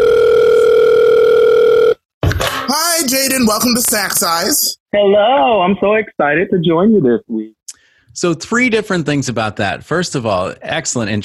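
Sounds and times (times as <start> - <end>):
phone line ringing tone: 0.0 - 2.1
speech: 3.4 - 7.6, 8.2 - 11.2.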